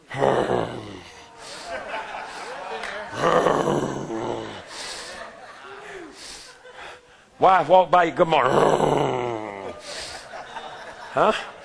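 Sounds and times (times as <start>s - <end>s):
man imitating a lion-like morning growl: 0.0s - 1.2s, 3.1s - 4.7s, 8.4s - 9.8s
laughter: 0.4s - 7.0s, 9.2s - 11.6s
speech: 7.4s - 9.2s, 11.2s - 11.5s.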